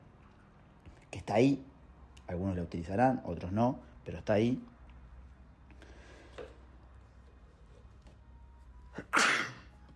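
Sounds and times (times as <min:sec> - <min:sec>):
speech: 0:01.2 - 0:01.7, 0:02.3 - 0:04.7
single sharp human sneeze: 0:09.0 - 0:09.7.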